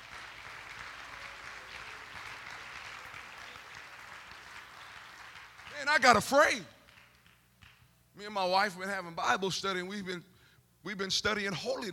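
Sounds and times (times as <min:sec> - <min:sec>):
crowd clapping: 0:00.0 - 0:07.9
speech: 0:05.8 - 0:06.7, 0:08.2 - 0:11.9.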